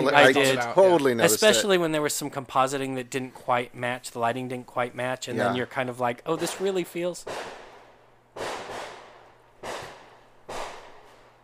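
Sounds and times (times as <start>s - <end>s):
speech: 0.0s - 7.6s
sharp loud pops of fireworks or gunshots: 6.3s - 11.4s.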